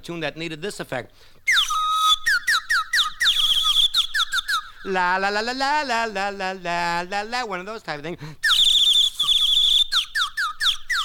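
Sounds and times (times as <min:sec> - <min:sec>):
speech: 0:00.0 - 0:01.6, 0:04.8 - 0:08.4
person whistling an imitation of a bird call: 0:01.5 - 0:06.1, 0:08.4 - 0:11.0.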